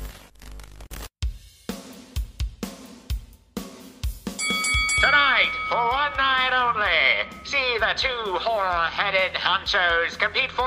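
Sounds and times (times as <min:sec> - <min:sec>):
typewriter bright ringing bell: 0:04.4 - 0:07.6
speech: 0:06.1 - 0:10.6.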